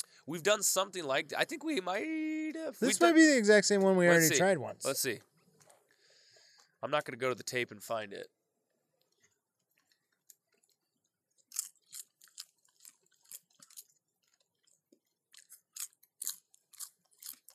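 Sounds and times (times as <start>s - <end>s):
speech: 0.3s - 5.3s, 6.8s - 8.4s
crunchy chewing of dill pickle flavored popcorn: 9.1s - 17.5s.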